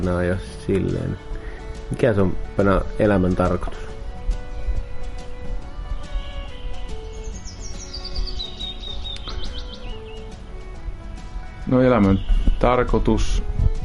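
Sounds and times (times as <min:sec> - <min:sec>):
speech: 0:00.0 - 0:01.3, 0:01.9 - 0:03.9, 0:11.7 - 0:13.6
birds chirping around a terrace in Kangasala: 0:00.0 - 0:13.8
bright descending whistled bird run: 0:06.0 - 0:10.7, 0:11.5 - 0:13.0.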